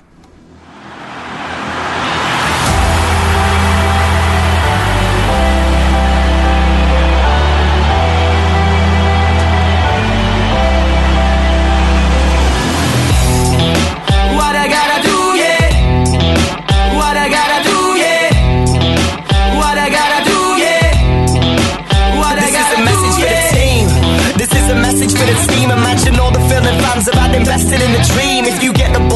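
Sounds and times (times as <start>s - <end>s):
World Cup football song with bass-heavy chords and punchy beat: 0.5s - 29.1s.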